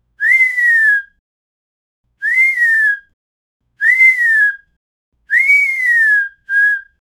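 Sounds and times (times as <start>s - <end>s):
short sharp whistle signaling attention: 0.2s - 1.1s, 2.2s - 3.1s, 3.8s - 4.7s, 5.3s - 6.9s.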